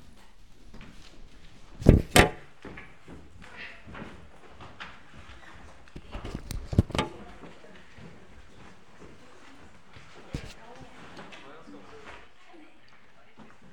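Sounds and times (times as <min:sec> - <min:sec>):
shuffling and handling noises: 0:00.0 - 0:13.7
church door opening and shutting with knocks and clunks: 0:01.8 - 0:02.8.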